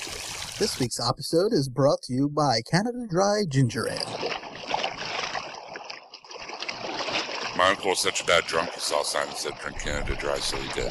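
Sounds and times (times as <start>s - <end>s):
stream water bubbling: 0.0s - 0.8s, 3.9s - 7.9s
speech: 0.6s - 4.4s, 7.6s - 10.8s.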